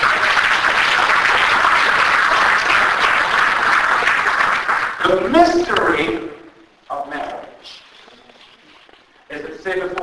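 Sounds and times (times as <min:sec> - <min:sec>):
audience applauding: 0:00.0 - 0:05.6
speech: 0:05.1 - 0:06.4.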